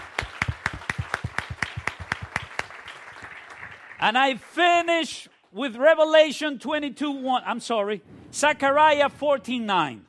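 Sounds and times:
congregation applauding in church: 0:00.0 - 0:05.1
speech: 0:04.0 - 0:10.0.

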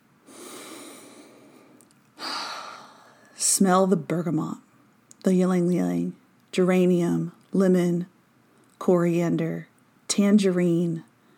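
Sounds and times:
deep breathing: 0:00.3 - 0:03.4
speech: 0:03.5 - 0:08.1, 0:08.8 - 0:11.1.

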